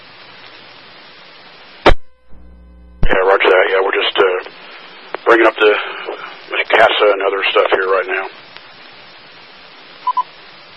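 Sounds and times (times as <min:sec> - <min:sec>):
faint hiss: 0:00.0 - 0:10.7
speech: 0:05.3 - 0:05.9, 0:06.8 - 0:08.4
phone alert beeps: 0:10.0 - 0:10.2.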